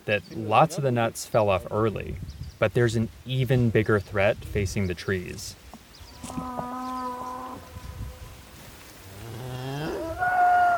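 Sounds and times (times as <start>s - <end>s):
speech: 0.0s - 5.6s
faint rustling ambience: 5.6s - 9.4s
cows mooing in a walnut forest: 6.2s - 8.2s, 9.2s - 10.7s.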